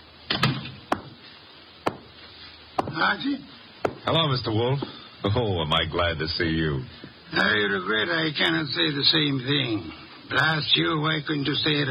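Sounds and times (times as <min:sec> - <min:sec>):
wooden door being shut: 0:02.8 - 0:03.0
speech: 0:03.0 - 0:11.8.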